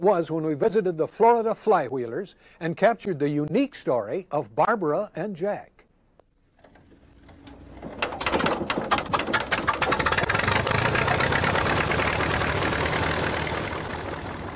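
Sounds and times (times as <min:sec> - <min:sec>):
speech: 0:00.0 - 0:05.7
vintage Allis-Chalmers tractor engine cranked at a tractor show in Florida: 0:06.5 - 0:14.5.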